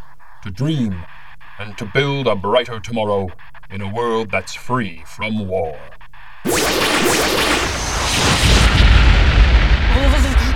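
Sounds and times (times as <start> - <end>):
speech: 0.4 - 6.0
gunshot: 6.5 - 10.0.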